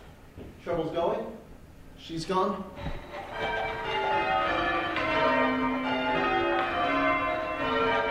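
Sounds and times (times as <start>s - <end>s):
speech: 0.6s - 1.4s, 2.0s - 3.6s
large tower bells rung by rope in change ringing by amateur ringers: 3.0s - 8.0s.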